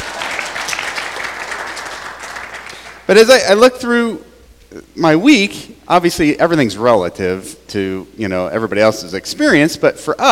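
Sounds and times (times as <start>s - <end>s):
audience applause welcoming guests at a gathering: 0.0s - 3.0s
speech: 3.1s - 10.3s.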